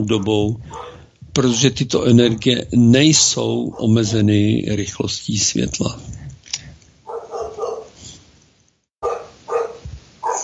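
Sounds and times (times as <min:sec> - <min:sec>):
speech: 0:00.0 - 0:06.2
dog barking: 0:00.7 - 0:01.6, 0:03.6 - 0:04.2, 0:07.1 - 0:08.0, 0:09.0 - 0:10.4.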